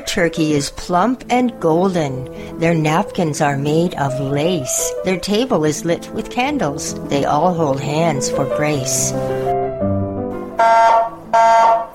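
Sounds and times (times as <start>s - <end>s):
speech: 0.1s - 9.4s, 10.6s - 11.8s
smoke alarm blaring, set off by a burnt turkey: 10.6s - 11.9s.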